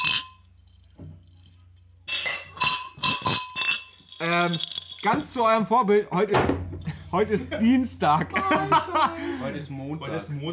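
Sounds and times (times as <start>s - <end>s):
glasses clinking together in a toast: 0.0s - 5.4s
speech: 4.2s - 10.5s
laughter: 6.9s - 9.6s.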